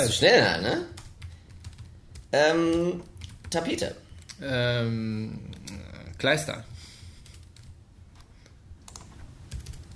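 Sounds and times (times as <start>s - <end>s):
speech: 0.0s - 1.0s, 2.3s - 6.7s
low steady hum: 0.0s - 9.9s
typing on a computer keyboard: 1.0s - 3.6s, 8.9s - 9.9s.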